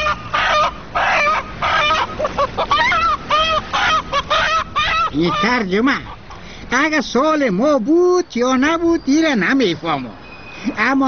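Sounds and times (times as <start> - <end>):
hen clucking: 0.0 - 6.6
speech: 5.2 - 11.0.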